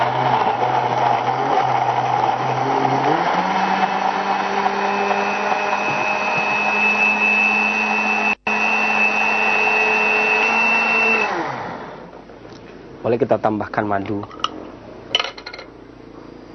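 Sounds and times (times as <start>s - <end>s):
blender blending juice: 0.0s - 12.1s
speech: 13.2s - 14.4s.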